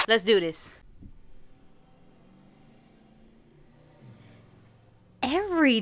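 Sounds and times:
speech: 0.1 - 0.8, 5.3 - 5.7
cars passing by outside with engine and tire rumble: 1.2 - 5.7.

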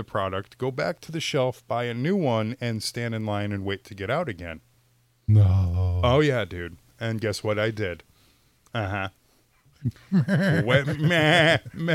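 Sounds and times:
speech: 0.0 - 4.7, 5.3 - 8.1, 8.7 - 9.2, 9.8 - 11.9
voice imitating a bleating sheep: 5.3 - 6.2
laughter: 10.0 - 11.9.

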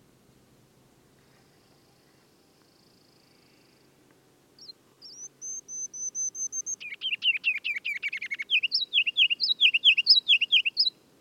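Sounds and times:
Ruby-crowned Kinglet Regulus calendula chattering song: 4.6 - 11.0.

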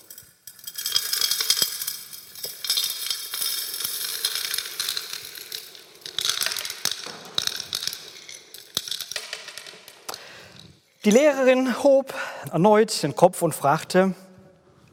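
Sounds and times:
pebbles poured from a container into a glass jar: 0.0 - 11.7
speech: 11.0 - 14.2.

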